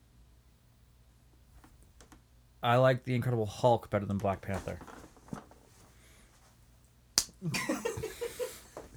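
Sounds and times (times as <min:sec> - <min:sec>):
speech: 0:02.6 - 0:04.9
person slapping another person: 0:07.2 - 0:07.4
laughter: 0:07.4 - 0:08.8.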